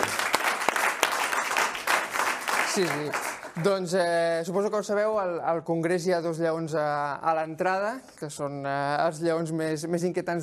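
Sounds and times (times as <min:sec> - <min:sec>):
audience applause: 0:00.0 - 0:03.7
speech: 0:02.8 - 0:10.4.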